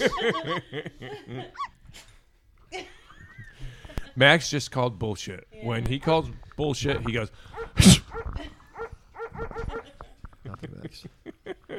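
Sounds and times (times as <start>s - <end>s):
speech: 0.0s - 2.1s, 4.2s - 8.5s, 10.6s - 11.2s
dog barking: 7.5s - 9.9s.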